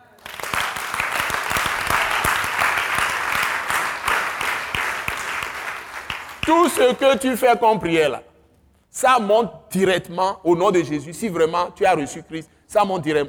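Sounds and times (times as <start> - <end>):
congregation applauding during a church service on prayer: 0.0 - 7.3
sharp single claps: 0.2 - 7.0
speech: 6.5 - 8.3, 8.9 - 13.2.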